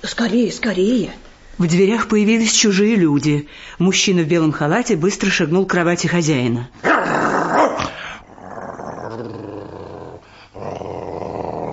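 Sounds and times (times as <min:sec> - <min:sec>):
speech: 0:00.0 - 0:07.2
dog growling in low rumbling snarls: 0:06.8 - 0:11.7.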